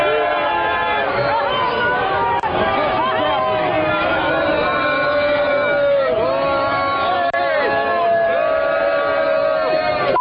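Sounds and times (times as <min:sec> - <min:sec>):
large crowd booing at a rally: 0:00.0 - 0:10.1.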